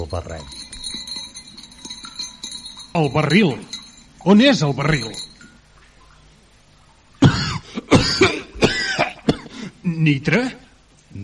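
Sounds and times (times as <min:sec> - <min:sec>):
speech: 0:00.1 - 0:00.8, 0:03.0 - 0:05.3, 0:10.0 - 0:10.6
man coughing: 0:07.2 - 0:09.6.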